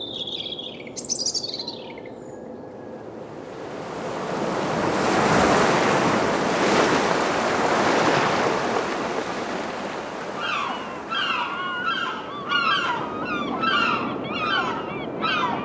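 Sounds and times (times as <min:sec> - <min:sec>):
seabird calls over the waves: 0:00.0 - 0:02.6, 0:10.3 - 0:15.6
wind on the Belgian coast: 0:00.0 - 0:15.6
surf washing in on the Belgian coast: 0:03.2 - 0:11.2.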